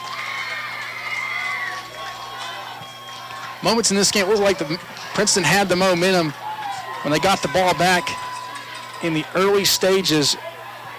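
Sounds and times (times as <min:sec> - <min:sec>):
football crowd's shrill shouts and whoops: 0:00.0 - 0:03.5, 0:06.3 - 0:09.0
large football crowd cheering in a stadium: 0:00.0 - 0:10.9
speech: 0:03.6 - 0:06.4, 0:07.0 - 0:08.2, 0:09.0 - 0:10.5.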